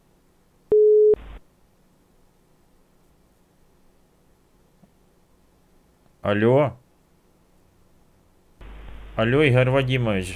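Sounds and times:
telephone ringing tone beep while dialing a call: 0:00.7 - 0:01.2
speech: 0:06.2 - 0:06.8, 0:09.2 - 0:10.3.

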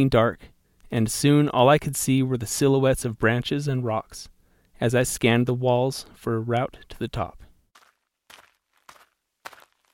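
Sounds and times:
speech: 0:00.0 - 0:07.4
footsteps crunching through dry brush in a canyon: 0:07.7 - 0:09.9.

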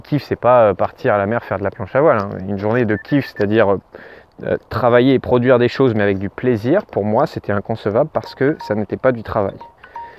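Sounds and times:
speech: 0:00.0 - 0:09.7
mobile phone electronic ringtone beeps: 0:08.2 - 0:08.8, 0:09.5 - 0:10.1.

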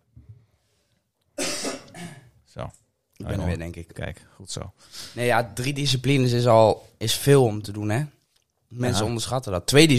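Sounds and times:
person coughing: 0:01.4 - 0:02.4
speech: 0:02.6 - 0:09.9.

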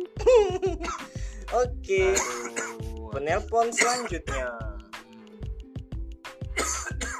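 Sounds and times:
laughter: 0:00.2 - 0:01.1
speech: 0:00.6 - 0:04.6
man coughing: 0:02.1 - 0:02.9, 0:03.7 - 0:04.3, 0:06.5 - 0:07.1.

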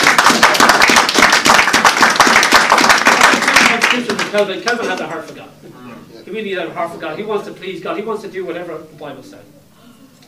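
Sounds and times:
crowd applauding: 0:00.0 - 0:05.1
speech: 0:04.4 - 0:09.6.

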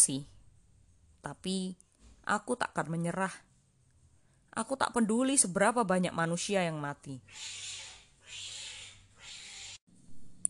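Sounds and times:
speech: 0:00.0 - 0:00.4, 0:01.2 - 0:03.5, 0:04.5 - 0:08.5
cats fighting with screeching yowls: 0:07.3 - 0:09.8.

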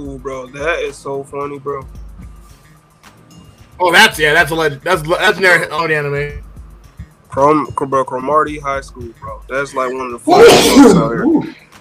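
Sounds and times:
speech: 0:00.0 - 0:02.0, 0:03.8 - 0:06.5, 0:07.4 - 0:11.6
loud sneeze: 0:10.3 - 0:11.5.

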